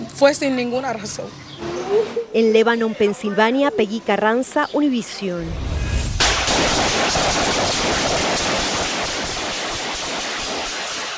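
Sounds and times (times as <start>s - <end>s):
speech: 0.2s - 5.7s, 6.6s - 8.8s
barrage of rapid gunfire outdoors in street: 6.2s - 11.1s.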